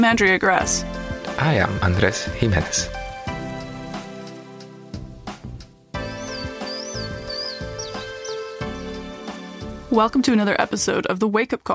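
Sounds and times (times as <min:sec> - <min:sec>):
speech: 0:00.0 - 0:03.0, 0:10.0 - 0:11.7
music: 0:00.0 - 0:11.6
marbled murrelet giving sharp high-pitched calls: 0:06.0 - 0:09.4.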